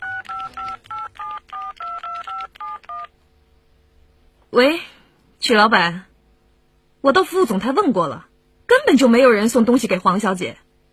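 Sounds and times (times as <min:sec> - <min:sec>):
touch-tone beeps of a telephone number being dialed in Shanghai: 0:00.0 - 0:03.1
speech: 0:04.5 - 0:06.1, 0:07.0 - 0:10.6.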